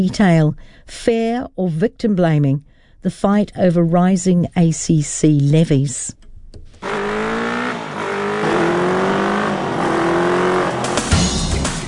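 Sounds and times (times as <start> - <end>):
speech: 0.0 - 6.2
motorcycle engine roaring and accelerating through several gears: 6.8 - 11.8.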